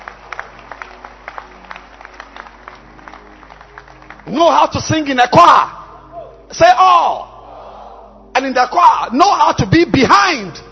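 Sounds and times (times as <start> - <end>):
small audience clapping hands: 0.0 - 4.6
speech: 4.3 - 5.8, 6.5 - 7.3, 8.4 - 10.6.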